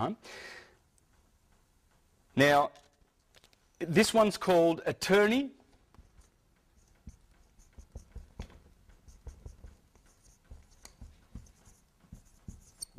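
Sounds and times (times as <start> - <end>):
speech: 0.0 - 0.6, 2.4 - 2.9, 3.8 - 5.6
handwriting with a pen: 6.1 - 12.9.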